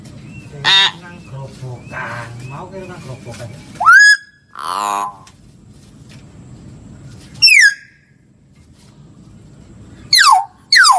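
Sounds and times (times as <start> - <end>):
lovebird lure call squawk: 0.6 - 1.0, 3.8 - 5.3, 7.4 - 7.9, 10.1 - 10.9
speech: 2.6 - 3.8.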